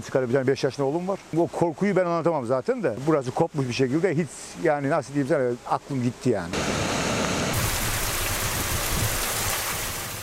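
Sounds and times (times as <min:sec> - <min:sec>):
speech: 0:00.0 - 0:06.8
heavy rain downpour in a storm in Adana, Kozan and Kadirli: 0:06.6 - 0:10.2.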